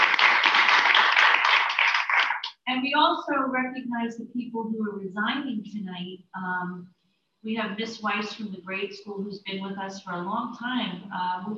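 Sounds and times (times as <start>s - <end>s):
audience applause at an evening meeting honoring staff: 0.0s - 2.5s
speech: 2.7s - 11.5s.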